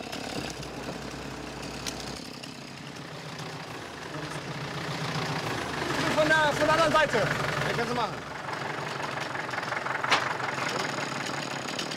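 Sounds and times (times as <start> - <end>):
tractor engine rumbling: 0.0 - 11.9
speech: 6.5 - 8.3.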